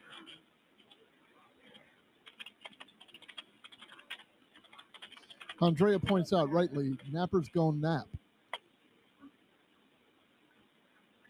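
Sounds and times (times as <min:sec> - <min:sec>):
rapid clicking of keys on a computer keyboard: 0:00.0 - 0:01.0, 0:01.7 - 0:06.2
speech: 0:05.6 - 0:08.2.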